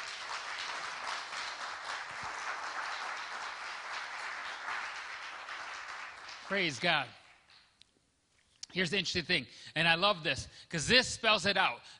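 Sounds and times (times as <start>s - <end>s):
crowd clapping: 0.0s - 7.7s
speech: 6.5s - 7.2s, 8.7s - 11.9s.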